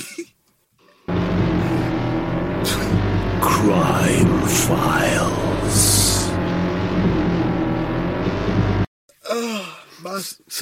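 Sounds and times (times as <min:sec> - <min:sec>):
loud motorbike engine roaring: 0:01.1 - 0:08.9
speech: 0:03.6 - 0:05.9, 0:09.3 - 0:10.6.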